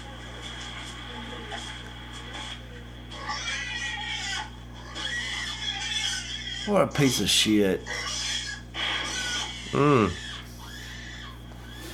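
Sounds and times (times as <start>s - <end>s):
pig squealing while being kicked: 3.1s - 11.9s
speech: 6.7s - 8.2s, 9.7s - 10.2s.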